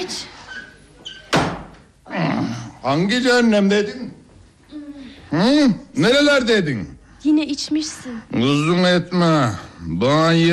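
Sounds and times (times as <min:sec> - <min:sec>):
someone pounding on a door: 0:01.3 - 0:01.8
speech: 0:02.8 - 0:04.2, 0:05.3 - 0:10.5.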